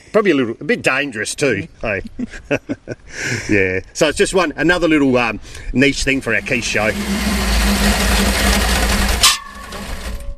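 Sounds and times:
speech: 0.1s - 8.7s
V8-engine chainsaw roaring: 6.4s - 10.3s
faint rattles: 6.4s - 10.3s
mechanical hum: 6.4s - 10.3s.

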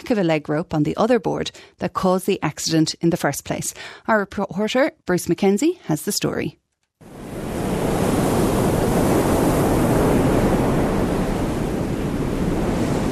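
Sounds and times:
speech: 0.1s - 7.2s
ocean surf washing onto a beach: 7.0s - 13.1s.

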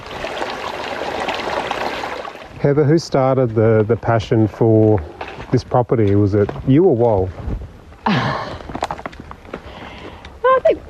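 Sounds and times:
creek water running over rocks: 0.0s - 7.3s
speech: 2.6s - 8.3s.

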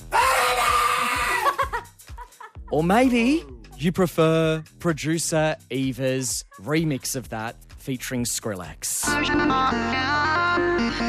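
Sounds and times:
person screaming peekaboo: 0.0s - 1.6s
speech: 2.7s - 11.0s.

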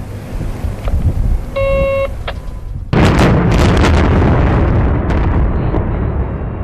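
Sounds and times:
copper mine rock blast boom and heavy rumble: 0.4s - 6.6s
short tonal beep: 1.6s - 2.2s.

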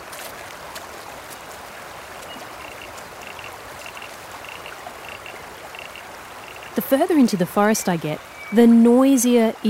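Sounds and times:
creek water flowing over rocks: 0.0s - 9.6s
faint chirping calls: 2.2s - 6.8s, 7.8s - 8.7s
speech: 6.8s - 9.6s.

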